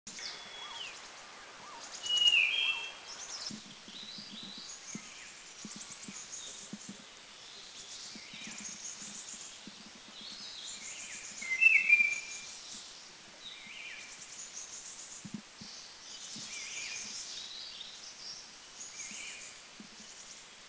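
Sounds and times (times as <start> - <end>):
Blue-fronted Robin in Dirang India: 0.1 - 3.6, 10.8 - 12.5.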